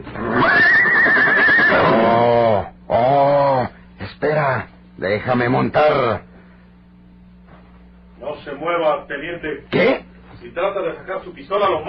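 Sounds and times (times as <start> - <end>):
horse neighing while being saddled beneath a mesquite tree after dark: 0.1 - 3.7
speech: 5.2 - 6.3, 8.6 - 11.8.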